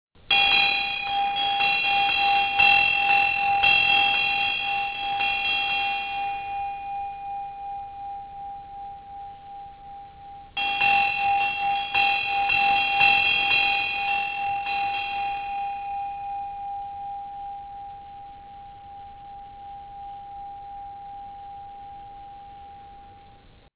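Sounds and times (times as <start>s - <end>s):
large Tibetan bells ringing: 0.2s - 23.7s.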